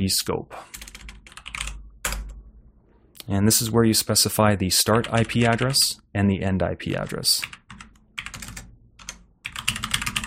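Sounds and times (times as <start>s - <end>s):
speech: 0.0s - 0.9s, 3.3s - 7.6s
typing on a computer keyboard: 0.7s - 2.4s, 5.0s - 5.8s, 6.9s - 10.2s.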